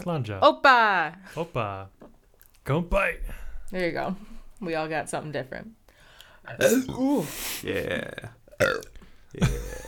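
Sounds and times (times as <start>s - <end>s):
speech: 0.0s - 2.0s, 2.6s - 5.8s, 6.4s - 9.8s
long loud multi-part burp: 6.6s - 9.8s.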